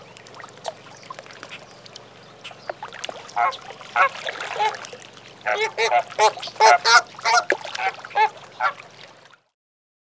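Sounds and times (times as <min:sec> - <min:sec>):
low background hum: 0:00.0 - 0:09.5
flamingo calls: 0:02.4 - 0:04.8, 0:05.4 - 0:08.8.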